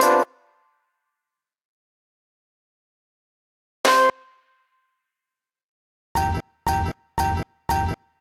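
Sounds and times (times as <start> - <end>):
breakbeat drums: 6.2 - 8.0.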